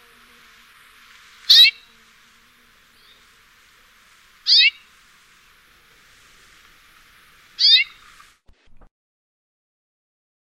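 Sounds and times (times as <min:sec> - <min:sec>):
amakihi calling: 0:00.0 - 0:08.4
faint background hiss: 0:00.0 - 0:08.9.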